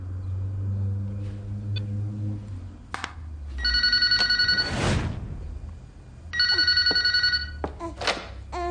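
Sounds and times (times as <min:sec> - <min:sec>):
faint low hum: 0:00.0 - 0:08.6
telephone ringing with rapid electronic trilling: 0:03.6 - 0:04.8, 0:06.3 - 0:07.7.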